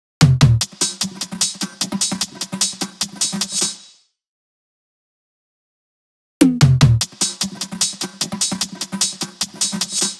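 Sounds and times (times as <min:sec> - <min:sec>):
percussion loop: 0:00.2 - 0:04.0, 0:06.4 - 0:10.1.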